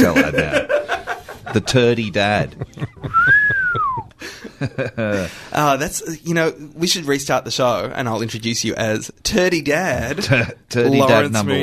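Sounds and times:
speech: 0.0 - 0.8, 1.5 - 2.8, 4.6 - 11.6
laughter: 0.0 - 5.5, 10.0 - 10.7
person whistling one sustained gliding note: 3.1 - 4.2.

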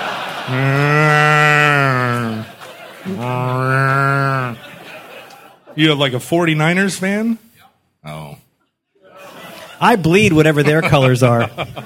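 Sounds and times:
laughter: 0.0 - 6.1, 9.0 - 11.8
speech: 0.5 - 0.8, 5.8 - 7.4, 9.8 - 11.8
toy moo cow mooing when turned over: 0.5 - 2.4, 3.2 - 4.6.

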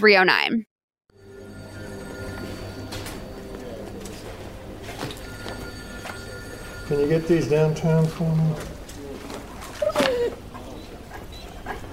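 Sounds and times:
speech: 0.0 - 0.7, 6.9 - 8.7
dog whimpering: 9.8 - 11.6.

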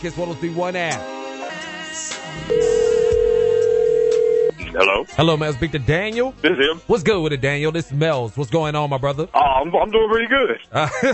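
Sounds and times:
speech: 0.0 - 2.8, 4.7 - 11.1
faint music: 0.0 - 11.1
ringback tone from an outgoing phone call: 2.5 - 4.6
laughter: 10.7 - 11.1.

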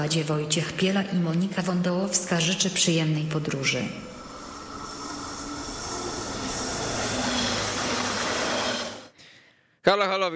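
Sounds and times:
speech: 0.0 - 4.2, 9.8 - 10.3
train departing from station rumbling: 0.0 - 9.1
train wheels squealing and grinding against the rails: 3.6 - 9.1.

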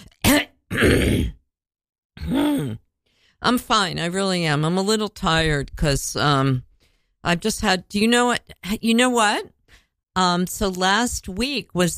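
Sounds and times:
throat clearing: 0.0 - 1.4, 2.2 - 2.8
speech: 0.7 - 1.4, 3.4 - 9.6, 10.2 - 11.9.

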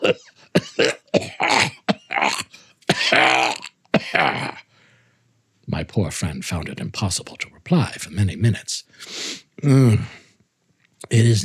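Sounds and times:
prolonged coughing fit: 0.0 - 4.7
throat clearing: 0.0 - 4.7, 9.6 - 10.2
speech: 6.0 - 8.8, 9.6 - 10.2, 11.1 - 11.4.

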